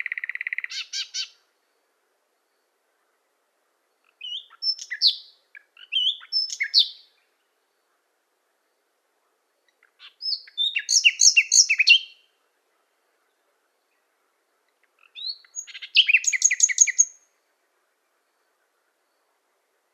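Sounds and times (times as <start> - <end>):
common nightingale singing: 0.0 - 9.0, 9.6 - 19.9.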